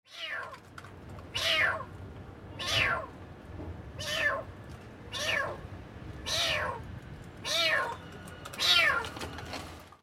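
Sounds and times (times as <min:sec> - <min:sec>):
cat: 0:00.1 - 0:01.9, 0:02.6 - 0:03.1, 0:04.0 - 0:04.5, 0:05.1 - 0:05.6, 0:06.2 - 0:09.2.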